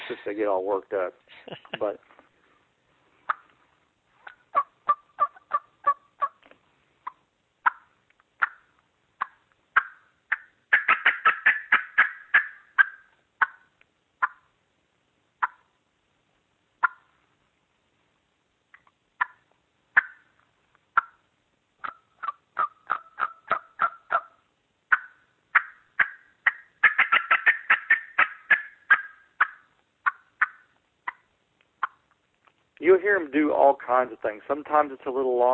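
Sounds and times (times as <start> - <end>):
speech: 0.1 - 2.2, 33.3 - 35.5
turkey hen cackling while flying down out of trees: 3.3 - 3.5, 4.2 - 6.4, 7.0 - 14.5, 15.4 - 15.8, 16.8 - 17.2, 19.2 - 20.4, 21.0 - 32.1.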